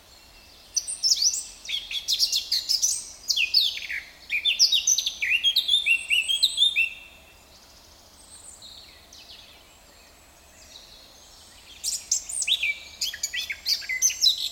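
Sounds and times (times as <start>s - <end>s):
Eurasian blackcap Sylvia atricapilla song with warble and whistled phrases: 0.7s - 7.1s, 11.7s - 14.5s.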